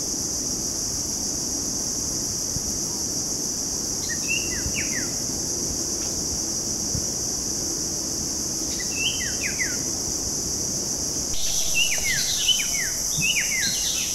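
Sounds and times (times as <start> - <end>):
loud steady high-pitched insect drone: 0.0 - 14.1
Red-eyed bulbul calls at Bukit Ular, Mount Kinabalu: 11.4 - 14.1.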